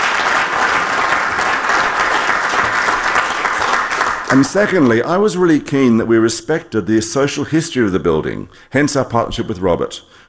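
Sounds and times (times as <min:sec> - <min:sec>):
crowd applauding: 0:00.0 - 0:04.9
speech: 0:04.3 - 0:10.2.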